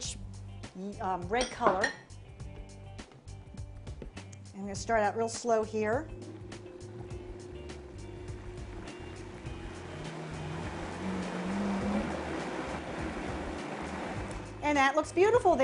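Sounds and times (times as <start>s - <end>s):
speech: 0.8s - 2.0s, 4.6s - 6.2s, 14.8s - 15.6s
blender motor mixing tomato juice into already blended ingredients: 6.0s - 14.6s.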